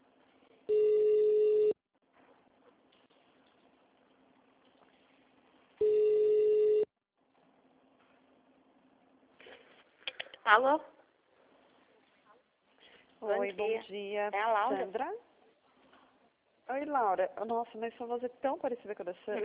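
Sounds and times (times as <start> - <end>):
telephone ringback tones on a call to a city hall: 0.7 - 1.8, 5.8 - 6.9
speech: 10.5 - 10.9, 13.4 - 15.3, 16.7 - 19.4.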